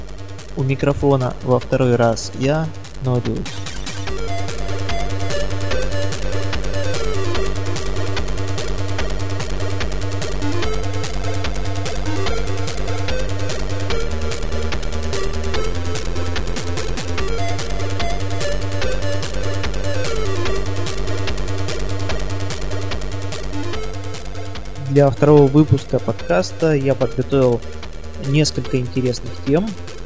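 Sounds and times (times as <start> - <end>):
chiptune music made on a ZX Spectrum computer: 0.0 - 30.0
speech: 0.6 - 4.4, 25.0 - 29.8.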